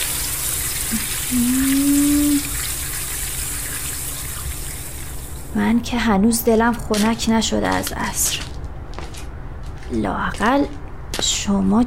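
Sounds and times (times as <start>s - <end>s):
water running while watering flower pots: 0.0s - 5.9s
speech: 0.9s - 1.8s, 5.6s - 8.5s, 9.9s - 11.8s.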